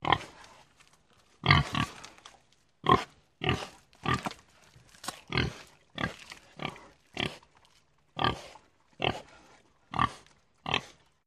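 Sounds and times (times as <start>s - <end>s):
pig grunting: 1.4s - 2.1s, 2.8s - 4.3s, 5.3s - 7.5s, 8.2s - 11.1s.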